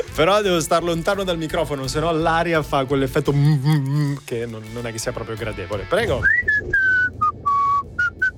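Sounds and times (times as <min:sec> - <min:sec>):
speech: 0:00.0 - 0:06.8
person whistling a short melody: 0:06.1 - 0:08.3.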